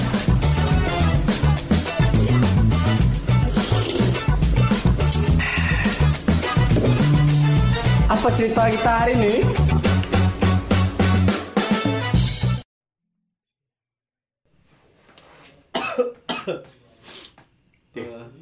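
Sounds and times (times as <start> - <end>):
music: 0.0 - 12.6
speech: 8.2 - 9.6
person coughing harshly: 15.7 - 16.7.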